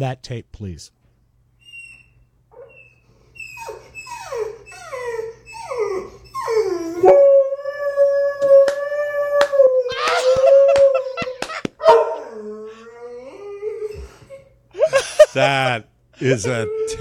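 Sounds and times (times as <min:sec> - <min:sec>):
speech: 0:00.0 - 0:01.0, 0:07.0 - 0:07.2, 0:15.4 - 0:17.0
dog howling at a window: 0:01.6 - 0:14.5, 0:16.4 - 0:17.0
laughter: 0:09.9 - 0:11.8, 0:14.7 - 0:16.5.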